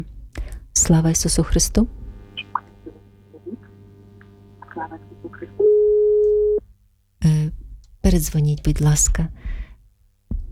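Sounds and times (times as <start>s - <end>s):
speech: 0.8s - 2.0s, 8.2s - 9.6s
telephone busy signal tone on a phone-in call: 4.7s - 6.6s.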